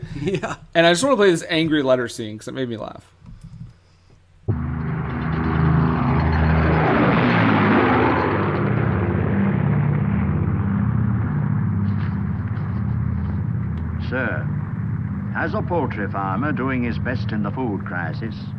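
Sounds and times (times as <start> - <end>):
laughter: 0.0 - 0.7
speech: 0.2 - 3.2, 15.4 - 18.5
low-flying propeller planes passing overhead: 4.5 - 18.5.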